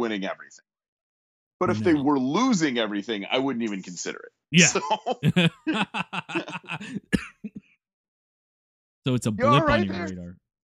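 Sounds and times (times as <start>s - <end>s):
speech: 0.0s - 0.7s, 1.6s - 7.6s, 9.0s - 10.4s
laughter: 1.6s - 2.2s, 4.6s - 7.6s, 9.1s - 10.2s
person coughing: 4.6s - 7.6s, 9.4s - 10.1s.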